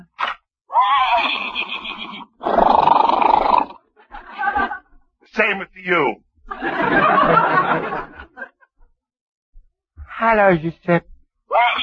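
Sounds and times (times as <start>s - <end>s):
horse whinnying: 0.7s - 3.8s
laughter: 4.1s - 8.7s
speech: 5.4s - 8.1s, 10.2s - 11.8s.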